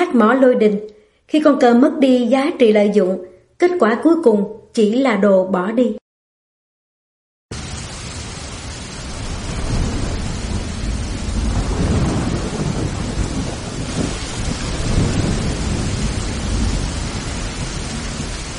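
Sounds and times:
speech: 0:00.1 - 0:06.0
heavy rain from a night storm: 0:07.5 - 0:18.5
thunder from a night storm: 0:07.5 - 0:18.5
strong wind: 0:09.0 - 0:18.5.

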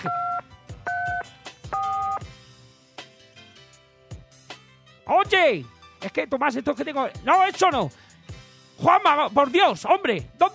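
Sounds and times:
speech: 0:00.0 - 0:00.2, 0:05.1 - 0:08.0, 0:08.8 - 0:10.5
telephone keypad dual-pitched dialing beeps: 0:00.0 - 0:02.2.

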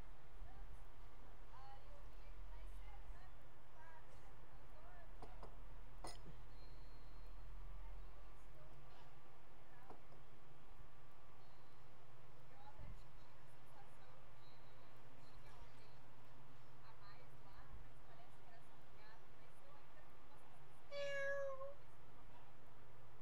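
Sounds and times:
noisy hum: 0:00.0 - 0:23.2
cat meowing: 0:20.9 - 0:21.8.

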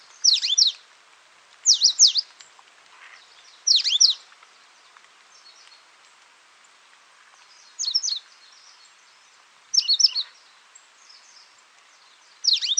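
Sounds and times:
Coal-crested Finch Charitospiza eucosma calling: 0:00.2 - 0:00.8, 0:01.7 - 0:02.3, 0:03.0 - 0:04.2, 0:07.8 - 0:08.3, 0:09.7 - 0:10.5, 0:12.4 - 0:12.7.

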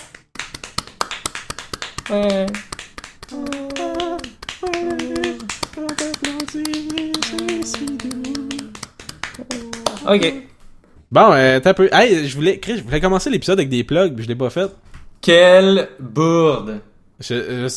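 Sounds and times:
steady rhythmic clapping: 0:00.0 - 0:10.6
speech: 0:02.1 - 0:02.7, 0:06.5 - 0:08.6, 0:09.4 - 0:10.5, 0:11.1 - 0:17.7
voice singing sustained tones: 0:03.3 - 0:10.1.

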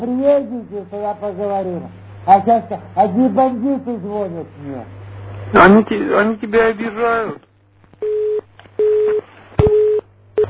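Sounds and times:
speech: 0:00.0 - 0:07.4
telephone busy tone after the other party hangs up: 0:08.0 - 0:10.4.

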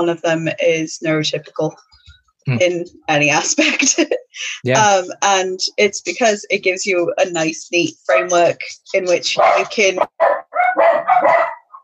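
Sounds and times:
speech: 0:00.0 - 0:10.4
laughter: 0:03.7 - 0:04.9
dogs barking: 0:09.3 - 0:11.8.

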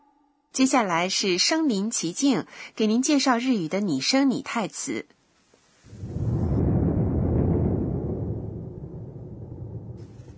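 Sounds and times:
speech: 0:00.6 - 0:05.2
thunder rumbling: 0:05.9 - 0:10.3.

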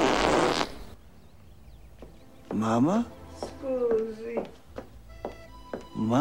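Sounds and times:
loud raspy fart from a woman: 0:00.0 - 0:00.8
speech: 0:02.5 - 0:04.6, 0:06.0 - 0:06.1.

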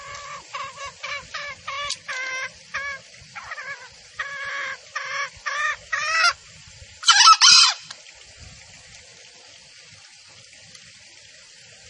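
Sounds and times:
female junglefowl calling: 0:00.0 - 0:06.4, 0:07.0 - 0:07.9.

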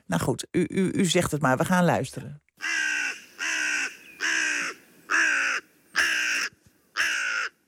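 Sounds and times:
speech: 0:00.1 - 0:02.8
crow cawing: 0:02.6 - 0:07.6.

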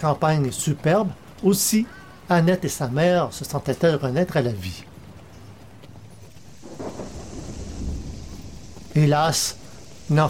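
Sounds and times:
speech: 0:00.0 - 0:04.9, 0:09.0 - 0:10.2
torrential rain hissing: 0:00.0 - 0:10.2
low rumbling thunder in a violent thunderstorm: 0:06.4 - 0:10.2.

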